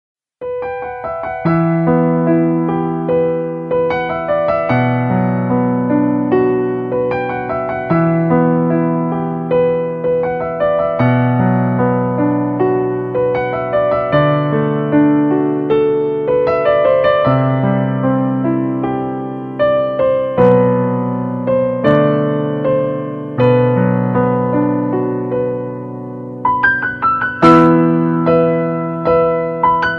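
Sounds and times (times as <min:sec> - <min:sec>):
background piano music: 0:00.4 - 0:29.9.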